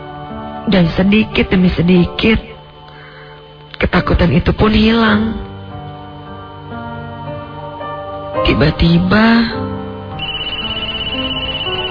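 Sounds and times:
speech: 0.7 - 2.5, 3.8 - 5.5, 8.5 - 9.6
mobile phone ringtone ringing: 10.2 - 11.9.

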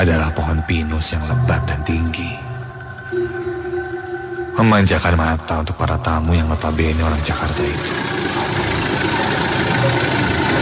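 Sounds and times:
speech: 0.0 - 2.5, 3.1 - 3.6, 4.6 - 8.6
car engine running while turning onto an off-road track: 6.4 - 10.6.

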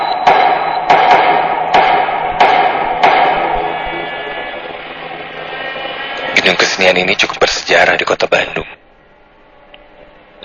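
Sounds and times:
hammer blows in a reverberant room: 0.0 - 7.4
steady hiss: 1.5 - 10.4
speech: 6.5 - 8.8.

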